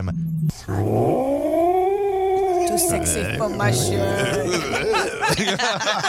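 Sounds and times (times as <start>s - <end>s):
speech: 0.0s - 1.2s, 2.8s - 6.0s
person imitating an angry cat having its tail pulled: 0.7s - 5.4s
laughter: 2.7s - 6.0s.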